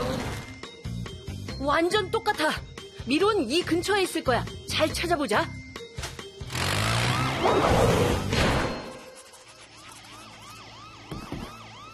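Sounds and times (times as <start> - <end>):
speech: 1.6 - 5.6, 7.4 - 8.3
siren wailing in rising-and-falling sweeps: 6.7 - 11.9.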